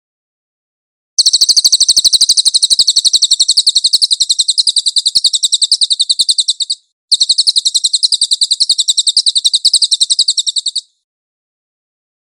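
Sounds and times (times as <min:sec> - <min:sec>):
cililin bird singing rapid trill of high chirps: 0:01.2 - 0:11.0.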